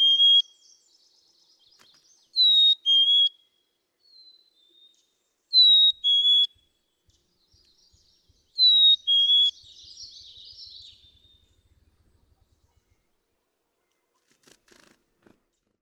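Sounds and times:
black-capped chickadee whistled fee-bee song: 0.0 - 0.8, 2.4 - 3.4, 5.5 - 6.6, 8.5 - 11.6.

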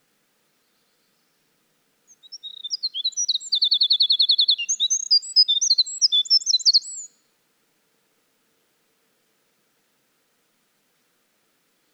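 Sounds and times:
Winter wren in full song: 2.1 - 7.1.

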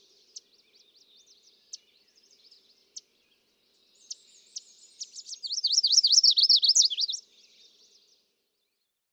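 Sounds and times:
chestnut-sided warbler singing high quick slurred notes: 0.0 - 8.1.

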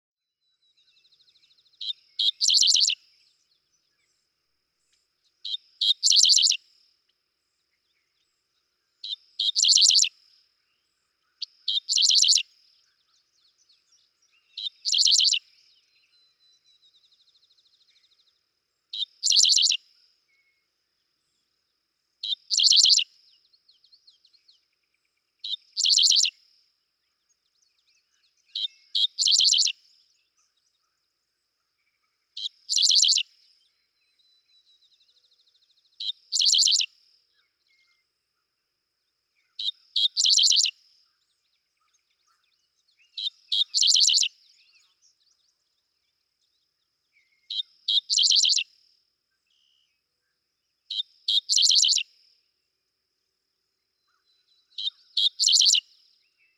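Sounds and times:
dickcissel calling: 1.8 - 3.0, 5.8 - 6.6, 9.4 - 10.1, 11.3 - 12.4, 14.6 - 15.4, 19.0 - 19.8, 22.3 - 23.0, 25.7 - 26.3, 28.6 - 29.8, 32.4 - 33.2, 36.0 - 36.9, 39.5 - 40.7, 43.2 - 44.3, 47.6 - 48.6, 51.3 - 52.0, 54.1 - 55.8.

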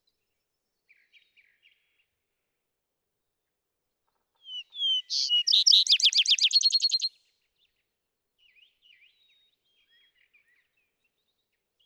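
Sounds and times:
Vesper sparrow singing: 4.5 - 7.1.

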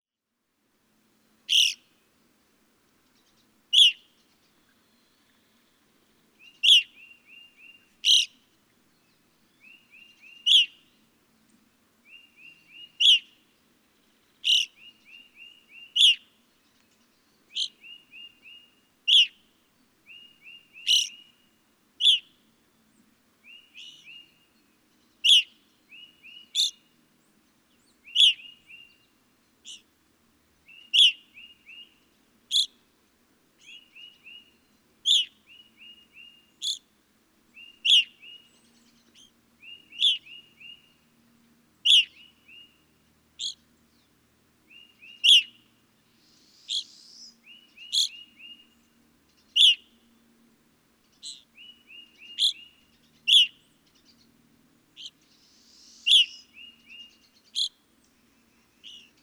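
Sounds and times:
Evening Grosbeak calling: 1.5 - 1.9, 3.3 - 5.6, 6.4 - 8.4, 9.6 - 11.0, 12.0 - 13.4, 14.4 - 16.4, 17.5 - 19.4, 20.1 - 21.4, 22.0 - 22.3, 25.2 - 26.9, 28.0 - 29.0, 29.6 - 29.9, 30.6 - 32.8, 33.6 - 36.9, 37.5 - 41.0, 41.8 - 42.8, 43.4 - 43.7, 44.7 - 50.0, 51.1 - 54.3, 54.9 - 59.2.

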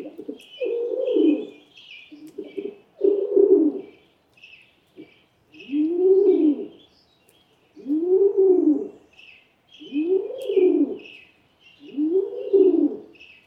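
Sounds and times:
rock pigeon cooing: 0.0 - 1.6, 2.2 - 4.0, 5.0 - 6.7, 7.8 - 9.0, 9.8 - 11.1, 11.8 - 13.2
birds chirping: 0.0 - 13.4.

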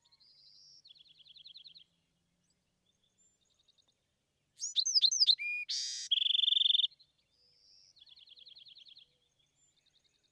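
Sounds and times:
Bewick's wren song: 4.6 - 6.9.

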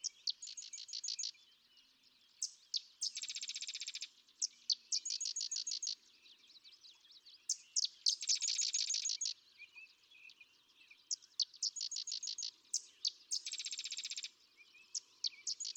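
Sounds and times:
sedge wren song: 0.0 - 15.7.

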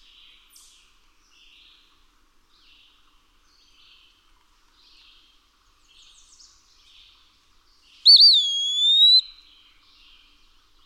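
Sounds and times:
Eastern wood-pewee singing: 8.1 - 9.3.

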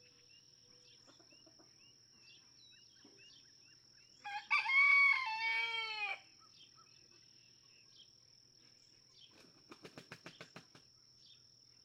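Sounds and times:
red junglefowl rooster crowing in a barnyard in Kentucky: 4.2 - 6.3.

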